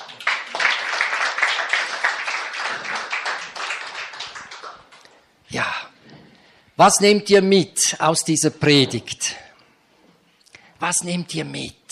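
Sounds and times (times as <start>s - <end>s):
crowd applauding with many hands clapping: 0.0s - 5.0s
speech: 6.8s - 9.4s, 10.9s - 11.8s.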